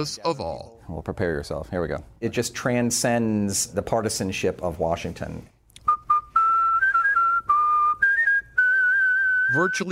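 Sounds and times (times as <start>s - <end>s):
speech: 0.0s - 5.6s, 9.5s - 9.9s
person whistling a melody: 5.8s - 9.9s.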